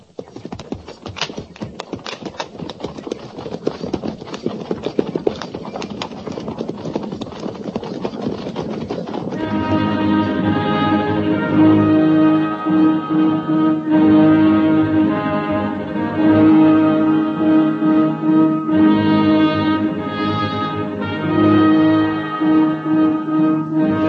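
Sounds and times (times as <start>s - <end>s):
cavalry horses trotting: 0.0s - 10.6s
tonal drone: 9.4s - 24.0s.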